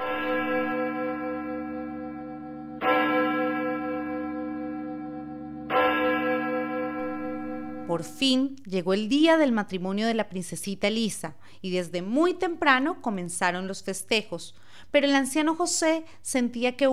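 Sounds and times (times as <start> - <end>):
church bell tolling slowly: 0.0 - 8.2
speech: 7.9 - 16.9.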